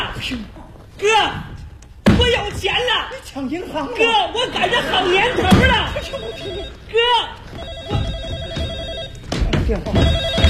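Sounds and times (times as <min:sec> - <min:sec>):
speech: 0:00.2 - 0:01.5, 0:02.2 - 0:08.2, 0:09.7 - 0:10.4
laughter: 0:03.7 - 0:06.8
telephone ringing with electronic trilling: 0:05.3 - 0:09.3, 0:10.0 - 0:10.4.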